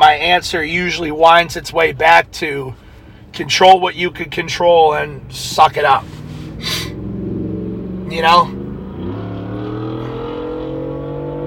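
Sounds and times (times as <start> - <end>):
speech: 0.3 - 2.8, 3.4 - 6.8, 8.1 - 8.6
turbocharged truck engine revving: 5.8 - 11.4.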